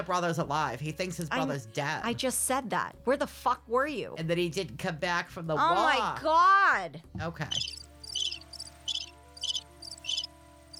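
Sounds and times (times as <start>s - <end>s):
speech: 0.0s - 7.8s
low constant hum: 7.4s - 10.7s
crickets chirping: 7.5s - 10.7s.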